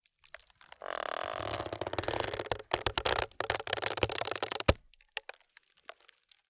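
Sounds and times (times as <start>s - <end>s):
long wooden tree creak: 0.6s - 5.3s.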